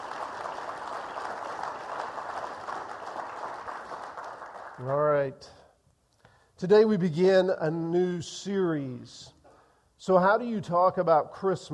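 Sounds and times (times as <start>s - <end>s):
dense applause from a large crowd: 0.0s - 5.0s
speech: 4.8s - 5.6s, 6.6s - 9.4s, 10.0s - 11.7s.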